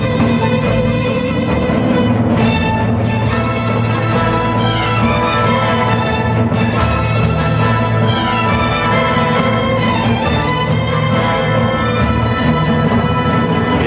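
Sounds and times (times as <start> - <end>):
epic cinematic orchestral music with strings and brass: 0.0 - 13.8.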